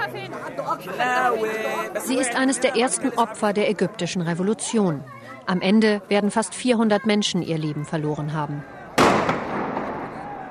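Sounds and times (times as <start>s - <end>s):
speech: 0.0s - 8.8s
tear gas grenade detonating near the Nile promenade: 9.0s - 10.4s.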